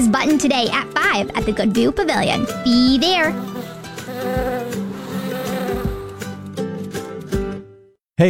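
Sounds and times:
speech: 0.0 - 3.5
bee buzzing: 3.2 - 6.4.

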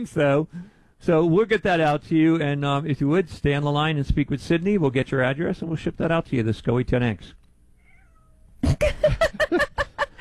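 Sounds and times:
speech: 0.0 - 7.4
female cat meowing insistently: 7.8 - 8.4
laughter: 8.6 - 10.1.

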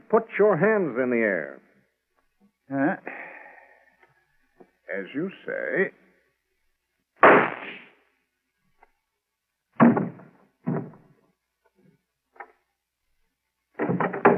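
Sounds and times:
speech: 0.1 - 1.7, 2.7 - 3.3, 4.9 - 6.0
gunshot from a concealed gun: 7.2 - 8.0, 9.8 - 10.9
soft knocks and thuds: 9.8 - 11.1, 13.8 - 14.3.

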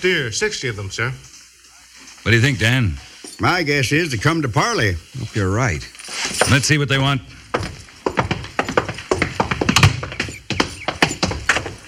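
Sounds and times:
speech: 0.0 - 1.4, 2.2 - 7.4
horse hooves of a lone rider approaching: 6.1 - 11.8.

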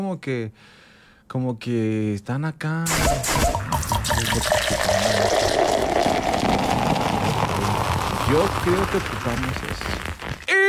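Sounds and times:
speech: 0.0 - 3.6, 4.2 - 5.4, 8.3 - 10.1
drink being poured into a glass: 3.5 - 10.4.

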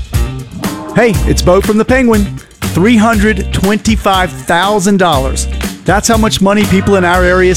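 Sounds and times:
ringing guitar chord: 0.2 - 2.4
speech: 1.0 - 7.5.

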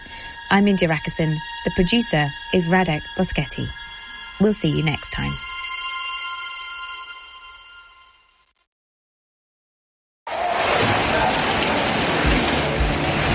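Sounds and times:
musical tone: 0.0 - 8.4
speech: 0.5 - 3.8, 4.4 - 5.5
heavy rain: 10.3 - 13.3.

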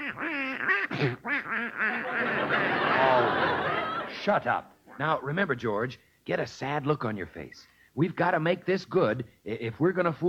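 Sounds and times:
duck quacking: 0.0 - 3.2
speech: 1.0 - 1.9, 4.2 - 10.2
laughter: 1.9 - 4.6.

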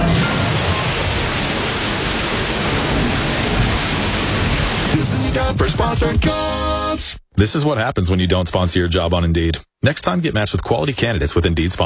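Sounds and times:
water gushing from a burst water main under heavy pressure: 0.0 - 5.4
speech: 5.4 - 6.5, 7.4 - 11.8.

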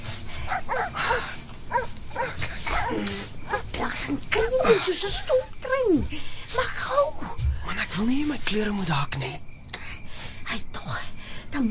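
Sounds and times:
outdoor hiss: 0.0 - 11.6
dogs barking: 0.4 - 3.7
speech: 4.0 - 7.1, 7.8 - 9.5.

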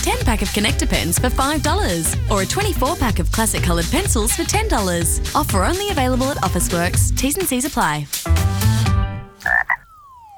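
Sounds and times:
speech: 0.0 - 8.5
frog croaking: 9.4 - 10.3.

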